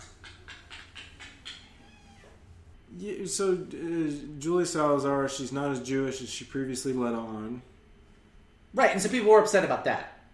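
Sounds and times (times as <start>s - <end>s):
cat meowing: 0.0s - 2.8s
low steady rumble: 0.0s - 3.3s
speech: 3.0s - 7.7s, 8.8s - 10.2s.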